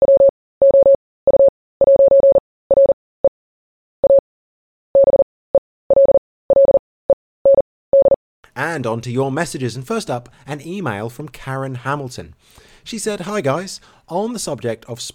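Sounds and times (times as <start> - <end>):
morse code beeps: 0.0 - 3.0, 4.0 - 4.2, 5.0 - 5.2, 5.9 - 6.8, 7.5 - 8.2
speech: 8.6 - 15.1.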